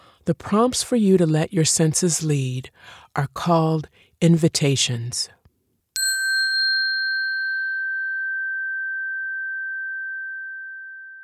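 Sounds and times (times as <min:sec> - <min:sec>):
speech: 0:00.3 - 0:05.4
single bright struck chime with long sustain: 0:06.0 - 0:11.2.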